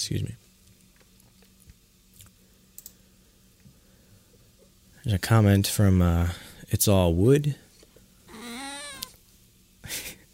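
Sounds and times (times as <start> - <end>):
speech: 0.0 - 0.4, 5.0 - 7.6
cat meowing: 8.3 - 9.2.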